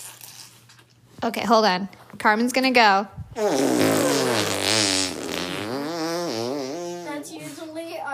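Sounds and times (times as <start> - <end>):
speech: 1.2 - 4.0
voice imitating a hippo's fart with a buzzing raspberry: 3.4 - 7.2.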